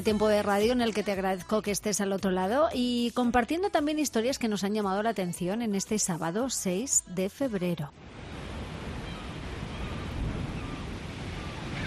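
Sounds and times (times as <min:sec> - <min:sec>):
speech: 0:00.0 - 0:08.2
Atlantic ocean waves crashing against a coastline: 0:08.0 - 0:11.8.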